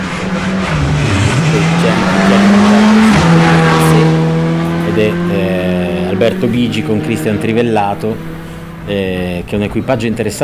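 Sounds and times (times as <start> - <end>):
rally car engine on a stage of a Ligurian rally: 0.0 - 10.4
speech: 6.3 - 8.3, 8.9 - 10.4.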